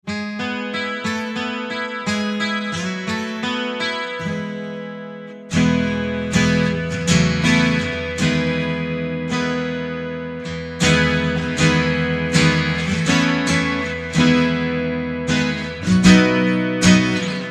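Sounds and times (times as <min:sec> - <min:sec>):
acoustic guitars: 0:00.0 - 0:17.4.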